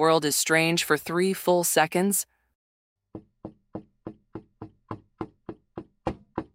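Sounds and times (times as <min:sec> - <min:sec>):
speech: 0:00.0 - 0:02.4
knocking on a wooden door: 0:03.2 - 0:06.5.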